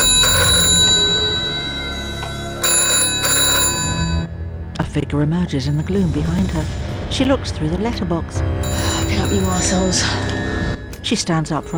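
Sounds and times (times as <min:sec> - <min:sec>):
old Bakelite telephone ringing with bright metallic bell inside a house: 0:00.0 - 0:04.3, 0:08.6 - 0:10.9
speech: 0:05.0 - 0:10.4, 0:11.0 - 0:11.7.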